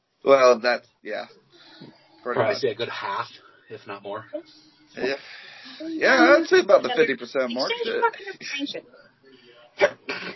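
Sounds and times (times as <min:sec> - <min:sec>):
speech: 0:00.2 - 0:09.1, 0:09.8 - 0:10.3
person sneezing: 0:09.8 - 0:10.3.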